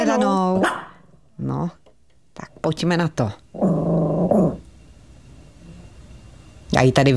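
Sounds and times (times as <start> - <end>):
speech: 0.1 - 1.8, 2.4 - 4.6, 6.7 - 7.1
female chihuahua barking: 0.6 - 1.0
female chihuahua growling: 3.5 - 4.7.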